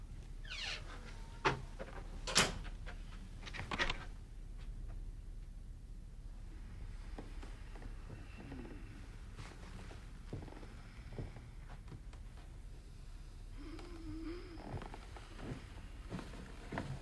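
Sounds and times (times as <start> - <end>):
low hum: 0.0 - 16.9
door shutting with a dull thud: 0.8 - 2.7.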